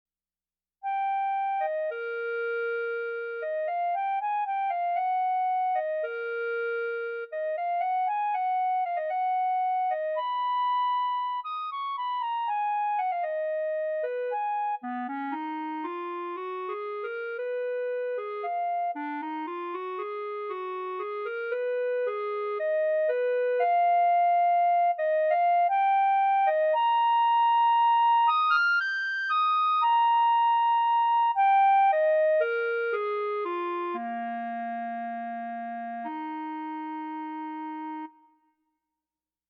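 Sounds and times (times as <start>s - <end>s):
E-flat clarinet playing lyrically: 0.9s - 38.4s.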